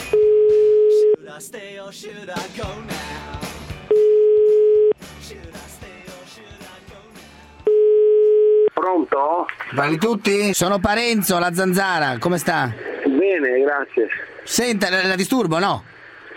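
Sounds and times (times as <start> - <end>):
outgoing telephone call ringing tone on an Italian line: 0.0 - 1.2, 3.9 - 5.0, 7.7 - 8.7
speech: 1.4 - 3.4, 9.2 - 15.9.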